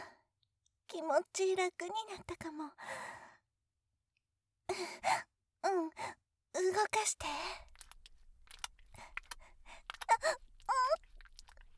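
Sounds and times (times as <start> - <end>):
speech: 1.1 - 3.3, 6.8 - 7.7
deep breathing: 7.3 - 11.7.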